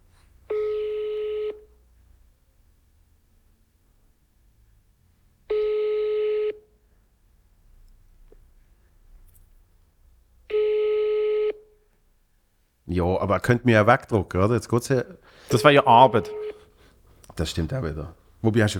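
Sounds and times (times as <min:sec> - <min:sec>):
faint low noise: 0:00.0 - 0:18.7
telephone ringback tones of an unanswered call: 0:00.5 - 0:01.6, 0:05.5 - 0:06.6, 0:10.5 - 0:11.6, 0:15.5 - 0:16.7
speech: 0:13.0 - 0:16.4, 0:17.4 - 0:18.7.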